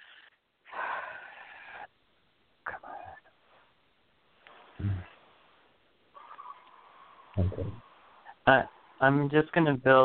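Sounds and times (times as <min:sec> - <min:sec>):
person breathing in through the nose and out through the mouth: 0:00.7 - 0:01.9
speech: 0:07.4 - 0:07.8, 0:08.5 - 0:10.0.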